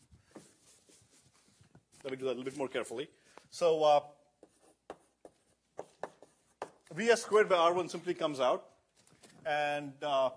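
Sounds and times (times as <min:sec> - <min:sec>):
scratchy writing strokes during a lecture: 0:00.3 - 0:02.7, 0:04.4 - 0:06.9
speech: 0:02.0 - 0:04.2, 0:07.0 - 0:08.7, 0:09.5 - 0:10.3.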